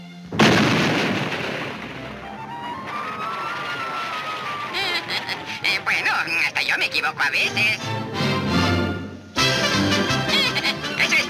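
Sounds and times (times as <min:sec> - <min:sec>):
thin steady whining tone: 0:00.0 - 0:11.2
cartoon sound effect of exploding powder: 0:00.3 - 0:06.4
laughter: 0:01.9 - 0:11.2
speech: 0:05.7 - 0:08.1.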